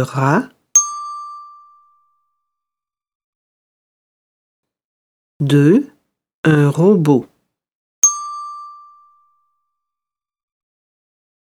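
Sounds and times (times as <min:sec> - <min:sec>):
speech: 0:00.0 - 0:00.6, 0:05.4 - 0:07.3
bell chime: 0:00.8 - 0:02.2, 0:08.0 - 0:09.5.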